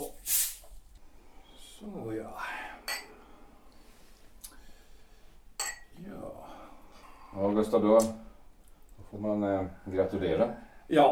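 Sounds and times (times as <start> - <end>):
champagne glasses clinking in a celebratory toast: 2.8 - 3.2, 5.6 - 6.0
speech: 7.4 - 8.2, 9.1 - 11.0.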